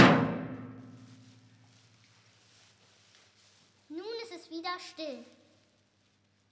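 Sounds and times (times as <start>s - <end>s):
castle door slamming shut with a heavy crash: 0.0s - 1.0s
speech: 4.5s - 5.4s.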